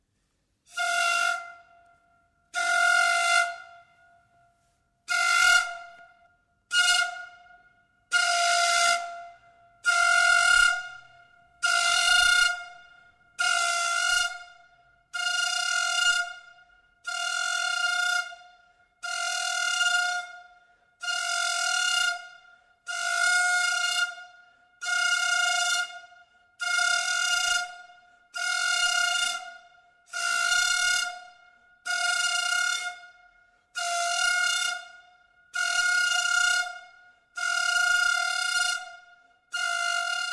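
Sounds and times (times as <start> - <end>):
Diaguita antara pre-Hispanic music of Chile: 0.7 - 40.3.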